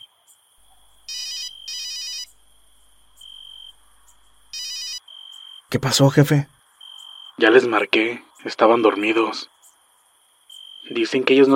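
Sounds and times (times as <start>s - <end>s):
electronic phone ringtone for an incoming call: 1.1s - 5.6s
speech: 5.7s - 6.6s, 7.5s - 9.5s, 10.9s - 11.5s.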